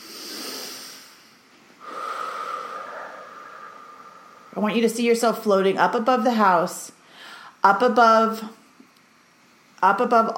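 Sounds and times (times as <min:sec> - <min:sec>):
deep breath during a guided relaxation: 0:00.0 - 0:04.6, 0:07.0 - 0:07.6
speech: 0:04.5 - 0:07.0, 0:07.6 - 0:08.6, 0:09.8 - 0:10.3.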